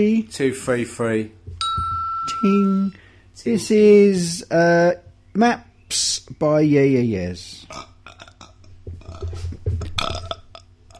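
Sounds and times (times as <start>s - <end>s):
speech: 0.0s - 1.4s, 2.3s - 7.9s
long loud rumbling burp: 7.7s - 10.9s.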